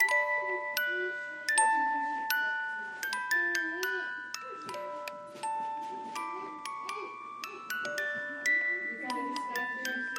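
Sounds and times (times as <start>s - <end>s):
music box melody on radio: 0.0s - 10.1s.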